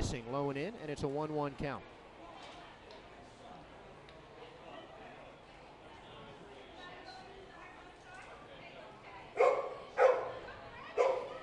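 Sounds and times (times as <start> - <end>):
speech: 0.2 - 2.0
dogs barking at a baseball game: 9.4 - 10.4, 11.0 - 11.4.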